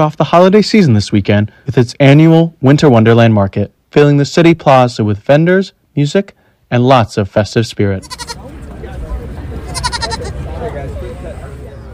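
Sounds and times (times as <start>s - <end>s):
speech: 0.0s - 8.4s
goat or sheep bleating at petting zoo: 8.0s - 8.4s, 9.7s - 10.4s
crowd chatter at a petting zoo: 8.0s - 11.9s.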